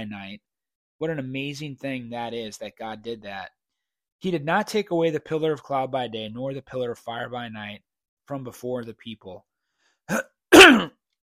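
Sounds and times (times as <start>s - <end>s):
speech: 0.0s - 3.6s, 4.2s - 9.5s, 10.1s - 11.0s
person clearing throat: 10.1s - 11.0s.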